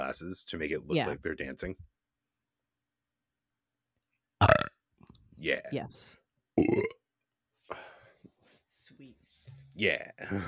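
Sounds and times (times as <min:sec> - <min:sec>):
speech: 0:00.1 - 0:01.9, 0:05.4 - 0:06.8, 0:09.8 - 0:10.4
loud burp with a rough low rumble: 0:04.4 - 0:04.8, 0:06.6 - 0:07.0
softer breathy exhale or murmur: 0:07.7 - 0:08.2.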